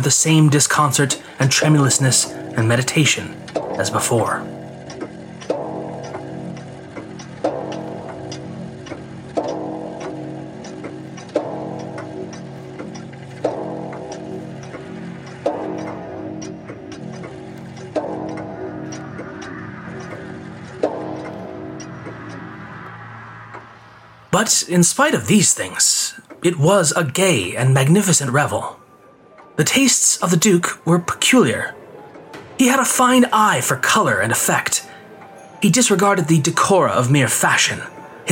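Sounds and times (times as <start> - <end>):
speech: 0.0 - 4.6, 24.7 - 28.8, 29.6 - 31.8, 32.6 - 34.9, 35.6 - 38.3
clock chiming the hour: 0.0 - 38.3.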